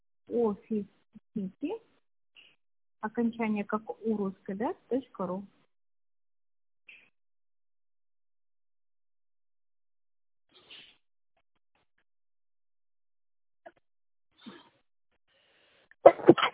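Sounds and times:
speech: 0.4 - 1.9, 3.0 - 5.6
breaths: 14.4 - 16.0
sudden loud sneeze: 16.0 - 16.5.

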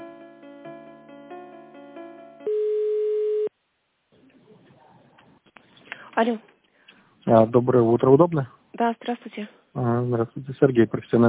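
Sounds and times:
telephone line tone while a call to a catering plant is transferred: 2.4 - 3.5
speech: 6.2 - 6.5, 7.3 - 11.2.

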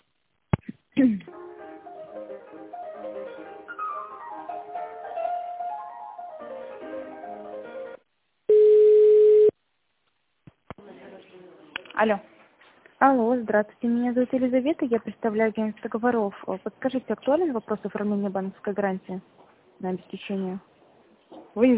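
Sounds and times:
speech: 1.0 - 1.4, 12.0 - 12.3, 13.0 - 20.7, 21.6 - 21.7
single steady telephone line tone during a call transfer: 8.5 - 9.6.

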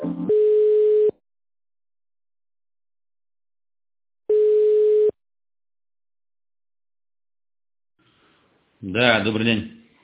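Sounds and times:
telephone ringback tone while a call is transferred: 0.3 - 1.1, 4.3 - 5.1
speech: 8.9 - 9.7.

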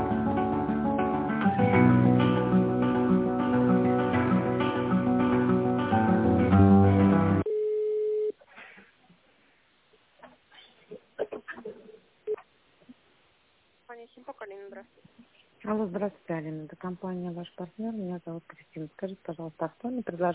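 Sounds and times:
short burst of loud music: 0.0 - 7.4
steady mid-pitched telephone ringback beep while calling a company: 7.5 - 8.3
speech: 16.8 - 20.3.

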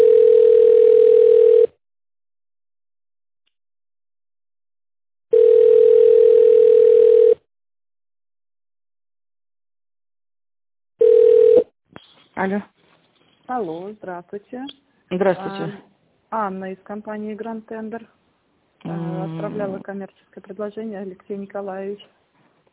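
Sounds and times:
telephone call tone while a call is being placed: 0.0 - 1.8, 5.3 - 7.4, 11.0 - 11.7
speech: 12.4 - 12.7, 13.6 - 18.2, 18.8 - 22.2.

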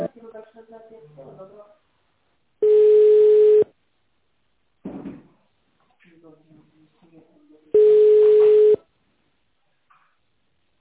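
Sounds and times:
steady telephone line tone during call transfer: 2.7 - 3.7, 7.8 - 8.8.

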